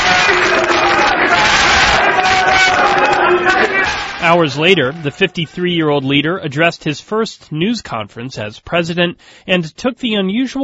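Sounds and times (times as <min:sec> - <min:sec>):
large crowd roaring and cheering at a presidential oath signing: 0:00.0 - 0:06.0
speech: 0:04.3 - 0:10.6.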